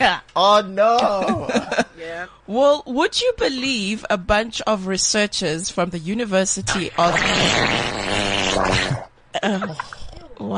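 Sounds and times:
speech: 0.0 - 10.5
loud wet sputtering fart: 6.7 - 9.1.

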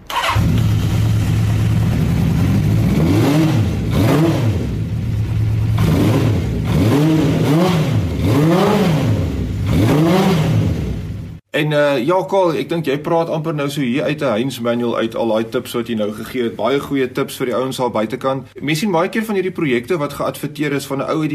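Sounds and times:
motorcycle engine with a new battery idling and revving: 0.1 - 11.4
speech: 11.6 - 21.3.

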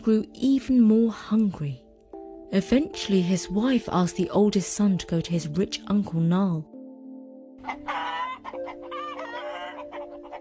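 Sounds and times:
speech: 0.0 - 1.8, 2.5 - 6.7, 7.6 - 8.2
hens clucking while pecking at corn: 7.6 - 10.3.

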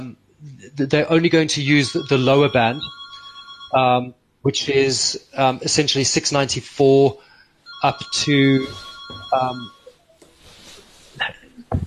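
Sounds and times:
indistinct voices: 0.0 - 2.9, 3.8 - 7.1, 7.8 - 9.7, 11.2 - 11.8
speech: 0.0 - 3.0, 3.7 - 9.8
telephone ringing faintly with electronic trill: 1.9 - 3.8, 7.7 - 10.0
small bumps of room noise: 10.2 - 11.8.

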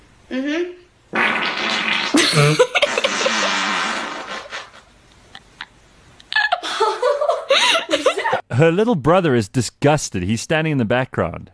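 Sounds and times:
speech: 0.3 - 0.8, 8.6 - 11.5
girl farting with buzzing and hissing blasts: 0.5 - 4.9
laughter: 2.2 - 3.5, 6.3 - 8.5.

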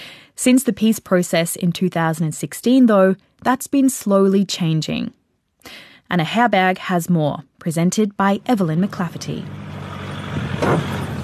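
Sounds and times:
speech: 0.4 - 9.8, 10.6 - 11.0
four-wheel drive car engine rumbling in the rainforest: 8.5 - 11.2.

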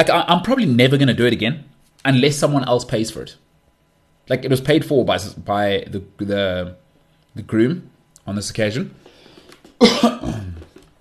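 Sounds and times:
speech: 0.0 - 3.4, 4.3 - 6.8, 7.4 - 9.0, 9.8 - 10.4
sick person coughing: 9.8 - 10.8.

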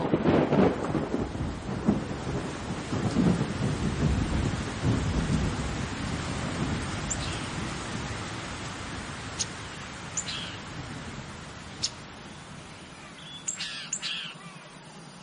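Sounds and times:
rolling thunder: 0.0 - 12.2
heavy rain: 0.0 - 15.2.

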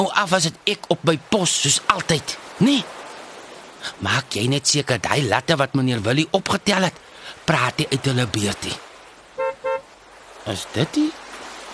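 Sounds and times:
speech: 0.0 - 3.0, 3.8 - 8.9, 10.4 - 11.2
BMW car horn toots: 9.4 - 9.9.

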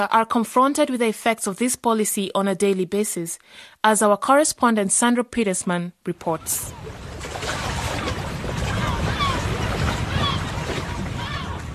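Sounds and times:
speech: 0.0 - 7.6
Mediterranean sea waves breaking at a small bay between cliffs on Lampedusa: 6.2 - 11.7
faint wind noise: 6.7 - 11.7.

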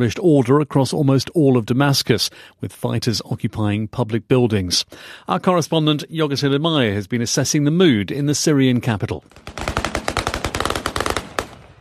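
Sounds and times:
speech: 0.0 - 9.8
celebratory gunfire in the central square of Damascus: 9.3 - 11.7.

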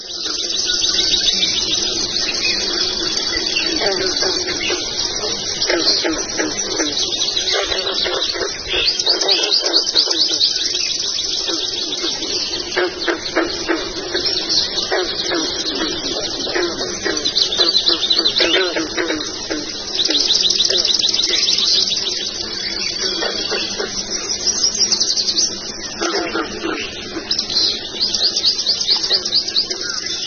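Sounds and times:
dawn chorus of many birds singing: 0.0 - 30.2
soft dove-like cooing: 0.0 - 30.2.

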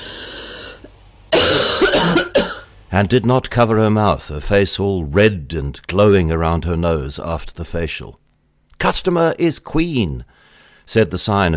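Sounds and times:
woman coughing: 1.3 - 2.7
speech: 2.9 - 8.2, 8.8 - 11.5.

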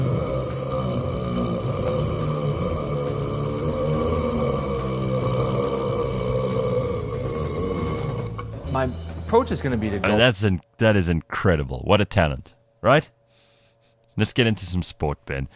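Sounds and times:
long loud rumbling burp: 0.0 - 8.7
speech: 8.8 - 13.2, 14.2 - 15.5.

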